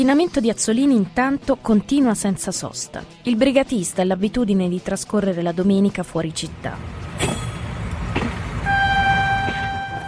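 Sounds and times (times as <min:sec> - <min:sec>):
speech: 0:00.0 - 0:07.3
train bound for Florence rumbling on tracks: 0:06.3 - 0:10.0
train wheels clacking on rails: 0:06.8 - 0:10.0
loud sustained train horn: 0:08.6 - 0:10.0.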